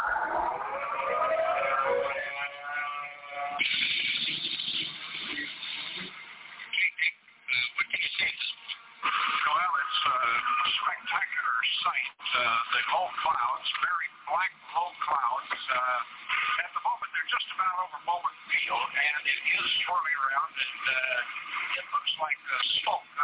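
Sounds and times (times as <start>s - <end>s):
civil defense tornado warning siren wailing through a tinny radio-like channel: 0.0s - 3.6s
crackling broadcast noise: 0.0s - 23.2s
voices: 0.0s - 23.2s.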